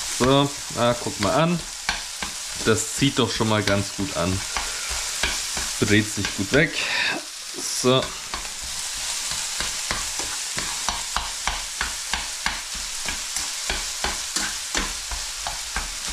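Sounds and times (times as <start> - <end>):
minced meat sizzling in a frying pan: 0.0 - 16.1
speech: 0.2 - 1.7, 2.6 - 4.6, 5.8 - 8.2.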